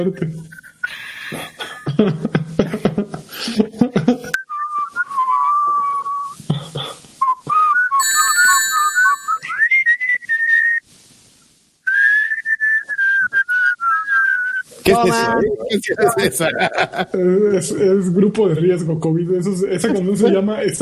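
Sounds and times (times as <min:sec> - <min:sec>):
speech: 0:00.0 - 0:03.8, 0:15.0 - 0:20.8
laughter: 0:01.3 - 0:04.4, 0:14.9 - 0:17.3
person whistling a song melody: 0:04.4 - 0:06.4, 0:07.2 - 0:10.8, 0:11.9 - 0:14.7.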